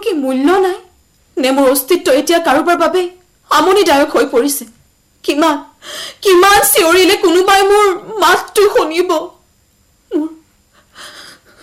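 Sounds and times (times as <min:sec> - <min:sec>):
speech: 0:00.2 - 0:00.8, 0:01.4 - 0:09.4
short wheezing breaths from a distressed tired person: 0:10.7 - 0:11.6.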